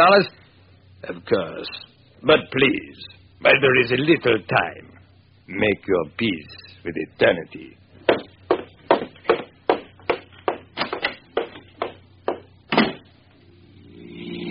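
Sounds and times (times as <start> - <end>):
speech: 0.0 - 0.4, 1.0 - 4.9, 5.5 - 7.8
sharp knocks: 8.0 - 13.1.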